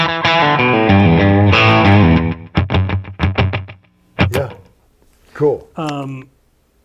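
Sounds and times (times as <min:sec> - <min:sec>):
distorted electric guitar through slapback analog delay effect: 0:00.0 - 0:04.7
speech: 0:05.8 - 0:06.4.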